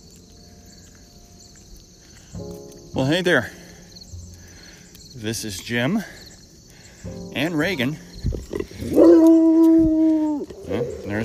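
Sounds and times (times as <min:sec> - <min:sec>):
speech: 0:02.4 - 0:03.6, 0:05.2 - 0:06.2, 0:07.0 - 0:08.1
neighbor's dog barking, howling and yipping: 0:08.8 - 0:11.2.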